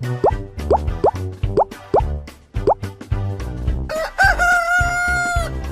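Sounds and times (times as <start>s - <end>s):
bouncy musical backing: 0.2s - 3.0s
rooster crowing: 3.9s - 5.6s.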